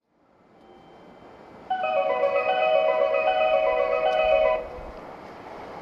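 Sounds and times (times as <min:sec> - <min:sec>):
melody: 0:01.7 - 0:04.8.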